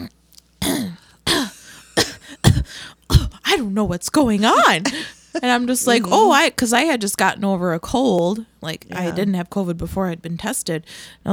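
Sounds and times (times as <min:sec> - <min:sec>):
person imitating a tickly dry cough: 0:00.6 - 0:03.4
speech: 0:03.6 - 0:11.3.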